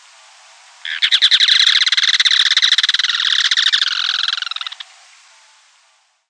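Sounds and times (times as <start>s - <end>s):
Yellow-chinned spinetail song rattle: 0.8s - 4.9s.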